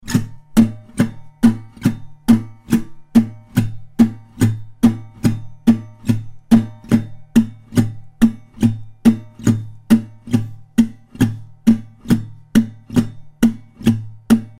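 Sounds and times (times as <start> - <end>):
muted la pompe rhythm guitar strumming: 0.0 - 14.5.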